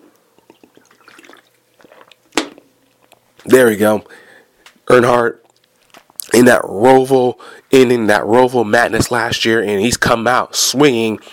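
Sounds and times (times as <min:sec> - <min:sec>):
wet sips of water: 0:00.4 - 0:02.2
small gulping clicks: 0:00.4 - 0:03.2
speech: 0:03.4 - 0:04.2, 0:04.9 - 0:05.4, 0:06.4 - 0:11.3.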